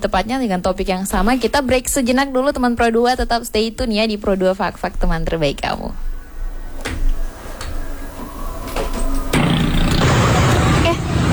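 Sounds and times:
speech: 0.0s - 6.1s
dense engine roar: 6.1s - 11.3s
idling vehicles in a traffic jam: 6.1s - 11.3s.

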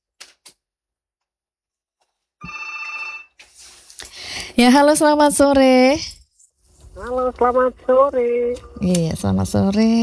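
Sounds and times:
telephone bell ringing for an incoming call: 2.4s - 3.4s
speech: 4.6s - 6.1s, 7.0s - 10.0s.

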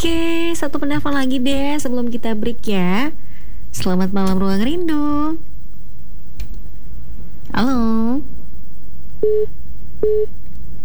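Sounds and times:
speech: 0.0s - 5.5s, 7.5s - 8.3s, 9.2s - 10.4s
telephone busy tone after a call cuts off: 9.2s - 10.3s.

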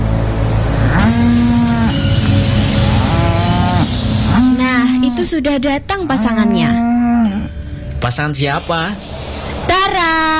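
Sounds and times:
engine-like hum: 0.0s - 10.3s
cow mooing: 0.8s - 5.4s, 6.0s - 7.7s
speech: 5.2s - 7.0s, 8.0s - 9.2s, 9.9s - 10.3s.

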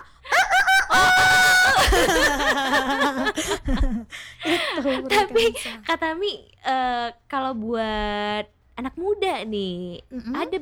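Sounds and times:
rooster crowing: 0.0s - 2.5s
laughter: 0.0s - 5.7s
speech: 4.8s - 10.6s.

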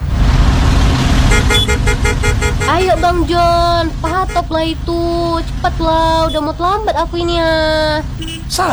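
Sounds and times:
car horns tooting in a traffic jam: 0.0s - 8.7s
idling traffic engine rumble in a traffic jam: 0.0s - 8.7s
speech: 2.8s - 8.7s.

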